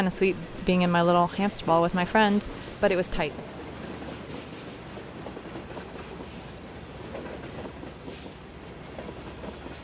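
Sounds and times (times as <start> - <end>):
speech: 0.0 - 3.5
train rolling along the rails: 0.0 - 9.8
faint clickety-clack of train wheels: 3.2 - 9.8.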